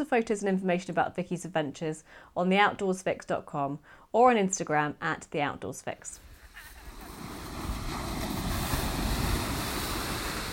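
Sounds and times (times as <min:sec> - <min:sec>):
speech: 0:00.0 - 0:06.3
waves crashing on the coast: 0:06.3 - 0:10.5
wind buffeting the microphone: 0:06.3 - 0:10.5.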